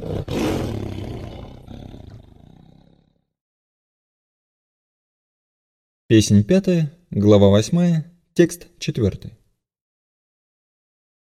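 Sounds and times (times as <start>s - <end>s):
lion roaring into a rumbling growl: 0.0s - 3.3s
speech: 6.1s - 9.4s.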